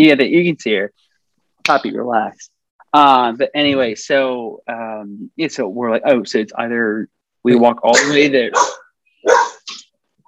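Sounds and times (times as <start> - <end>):
speech: 0.0 - 9.5
dog barking: 8.5 - 9.7.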